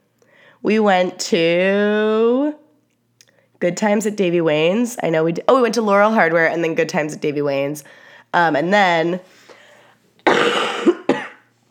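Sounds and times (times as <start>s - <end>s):
speech: 0.6s - 2.6s, 3.6s - 9.4s
woman coughing: 10.2s - 11.5s.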